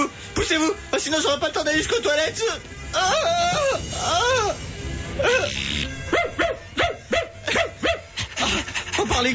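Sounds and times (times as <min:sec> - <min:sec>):
noisy background: 0:00.0 - 0:09.3
speech: 0:00.5 - 0:06.4, 0:09.2 - 0:09.3
dog barking: 0:06.1 - 0:08.3.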